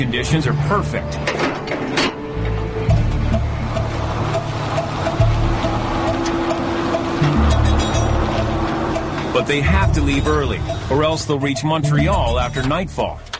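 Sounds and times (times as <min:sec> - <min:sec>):
speech: 0:00.0 - 0:02.2, 0:09.4 - 0:13.3
airplane engines running: 0:00.0 - 0:13.3.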